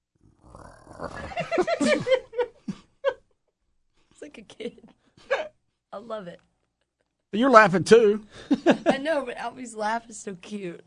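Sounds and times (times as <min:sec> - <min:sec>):
person growling for a sock puppet: 0:00.2 - 0:01.7
laughter: 0:01.2 - 0:03.4, 0:08.3 - 0:09.0
speech: 0:06.1 - 0:06.5, 0:07.3 - 0:10.8.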